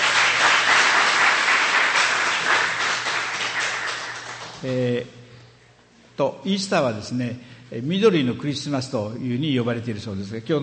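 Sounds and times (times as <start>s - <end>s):
congregation applauding at an Easter church service: 0.0s - 5.0s
speech: 4.6s - 5.2s, 6.2s - 10.6s.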